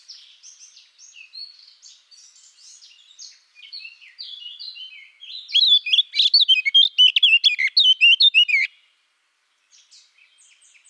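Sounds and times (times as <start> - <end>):
Eurasian blackcap Sylvia atricapilla warbling song: 5.5 - 8.7.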